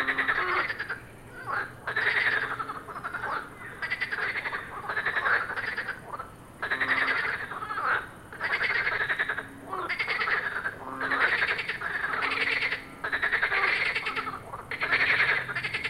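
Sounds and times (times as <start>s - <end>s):
frogs croaking in a chorus: 0.0s - 15.8s.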